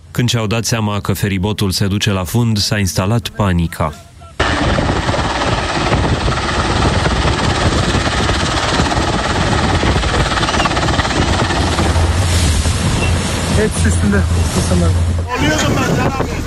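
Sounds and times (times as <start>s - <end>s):
speech: 0.2s - 4.1s, 13.6s - 16.4s
rescue helicopter rotor chop and engine roar flying overhead: 4.4s - 13.3s.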